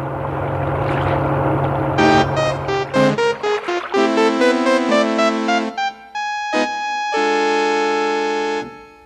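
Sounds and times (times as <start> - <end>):
Coast Guard launch motorboat engine droning by a sandbar: 0.0 - 8.8
loud choppy tonal blasts and sustained notes: 1.2 - 7.4.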